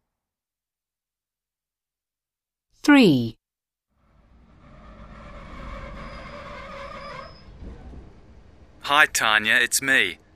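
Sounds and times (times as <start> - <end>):
speech: 2.8 - 3.4, 8.9 - 10.2
train running on the rails: 4.2 - 10.3.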